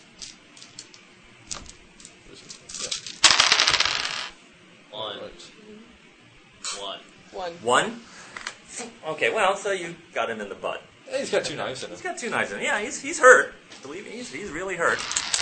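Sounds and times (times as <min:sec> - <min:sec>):
damage dice rolling on a table: 0:00.2 - 0:04.4, 0:14.9 - 0:15.4
speech: 0:07.4 - 0:08.1, 0:08.8 - 0:15.1.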